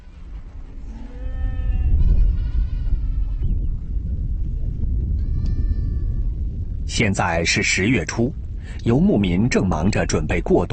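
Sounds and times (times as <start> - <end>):
low steady rumble: 0.0 - 10.7
livestock of nomadic herders bleating: 0.9 - 3.5, 5.2 - 6.4
speech: 7.0 - 10.7.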